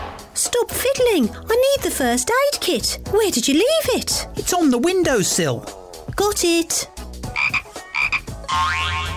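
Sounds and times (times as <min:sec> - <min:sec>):
speech: 0:00.5 - 0:07.0
rare French forest-dwelling frog croaking inside a box: 0:07.3 - 0:09.1.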